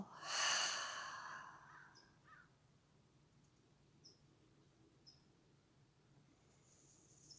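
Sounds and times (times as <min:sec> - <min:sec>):
deep breathy open-mouth exhale: 0:00.0 - 0:01.7.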